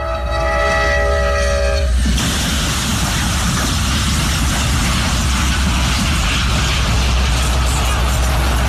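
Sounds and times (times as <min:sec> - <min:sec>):
passenger train horn blaring: 0:00.0 - 0:02.0
passenger train crashing into a tractor-trailer: 0:00.7 - 0:08.6.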